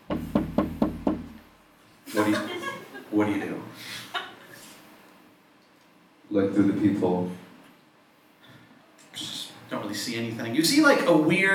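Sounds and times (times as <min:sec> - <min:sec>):
firm knocks on a wooden door: 0:00.0 - 0:01.4
speech: 0:02.1 - 0:04.0, 0:06.3 - 0:07.4, 0:10.0 - 0:11.5
laughter: 0:02.1 - 0:04.7.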